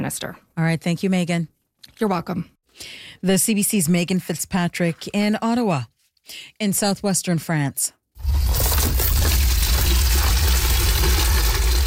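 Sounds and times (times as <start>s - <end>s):
speech: 0.1s - 9.4s
water gushing into a bucket: 8.2s - 11.8s.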